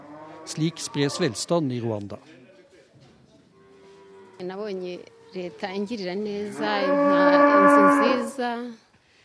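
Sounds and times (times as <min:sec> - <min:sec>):
cow in Rwanda mooing: 0:00.0 - 0:01.4, 0:03.6 - 0:08.5
speech: 0:00.5 - 0:02.4, 0:04.4 - 0:08.8.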